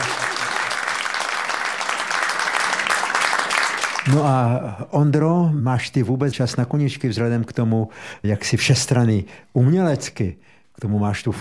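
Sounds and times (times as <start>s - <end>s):
crowd applause: 0.0s - 4.3s
speech: 4.1s - 11.4s.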